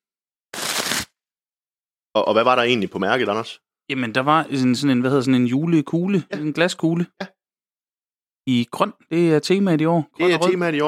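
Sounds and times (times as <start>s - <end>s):
wrapping paper torn open: 0.5s - 1.2s
speech: 2.2s - 7.4s, 8.5s - 10.8s.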